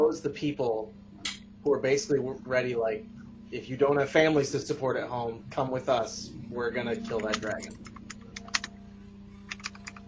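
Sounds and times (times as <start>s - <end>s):
steady low hum: 0.0s - 10.0s
speech: 0.1s - 7.9s
computer keyboard typing: 7.0s - 8.8s, 9.5s - 10.0s.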